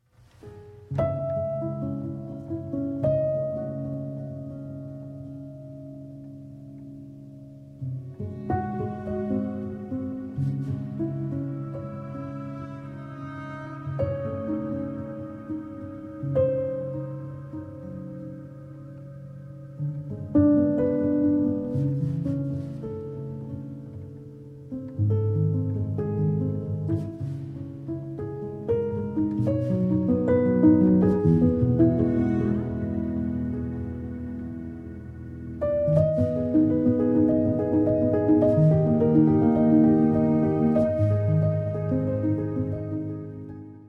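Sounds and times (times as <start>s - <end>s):
waltz for piano, violin and cello: 0.2s - 43.8s.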